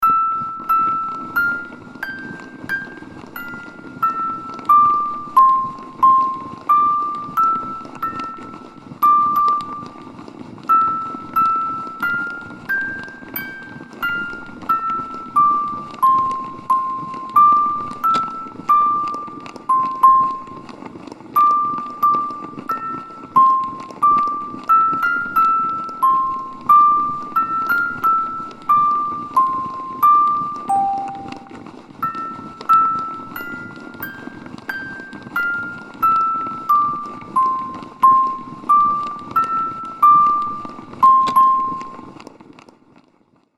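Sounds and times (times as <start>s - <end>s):
music box melody: 0.0s - 42.4s
noise: 0.0s - 43.5s.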